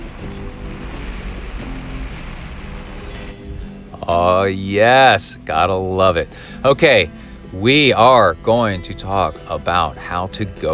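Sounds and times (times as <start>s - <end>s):
low rumbling hum: 0.0s - 4.1s
rain falling outdoors: 0.0s - 5.2s
speech: 4.0s - 10.7s.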